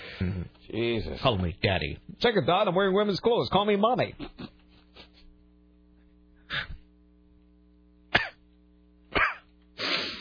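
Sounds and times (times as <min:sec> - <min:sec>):
speech: 0:00.2 - 0:04.4
person coughing: 0:08.1 - 0:08.4, 0:09.1 - 0:09.5
rasping throat clearing: 0:08.1 - 0:08.4, 0:09.1 - 0:09.5.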